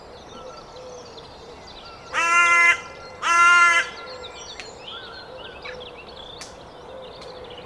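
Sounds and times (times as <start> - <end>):
carrion crow Corvus corone cawing: 2.1 - 4.3.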